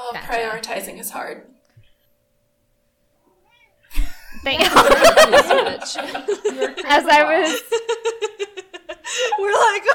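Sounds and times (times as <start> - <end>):
speech: 0.1 - 1.6, 4.3 - 9.9
cat chirp: 3.3 - 3.9
cat meowing loudly: 3.4 - 3.8
laughter: 3.9 - 9.9.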